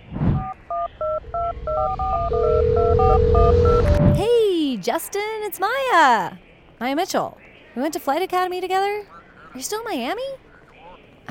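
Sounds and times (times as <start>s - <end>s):
low rumble: 0.7s - 4.4s
steady held telephone tone: 0.8s - 4.6s
speech: 1.6s - 10.4s.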